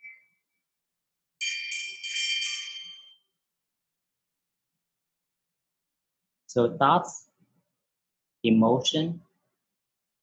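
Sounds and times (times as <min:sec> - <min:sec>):
meditation bell ringing: 0:01.4 - 0:03.5
speech: 0:06.5 - 0:07.3, 0:08.4 - 0:09.2.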